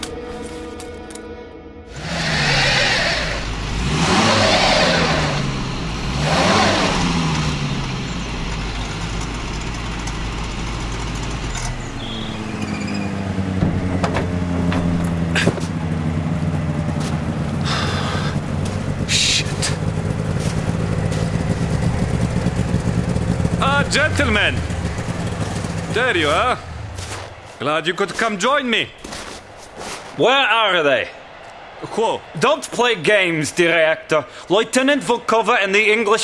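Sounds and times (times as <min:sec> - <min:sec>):
snowmobile engine starting, revving and driving off: 0:01.9 - 0:29.5
speech: 0:23.9 - 0:24.7, 0:26.0 - 0:26.6, 0:27.6 - 0:29.0, 0:30.2 - 0:31.2, 0:32.0 - 0:36.2.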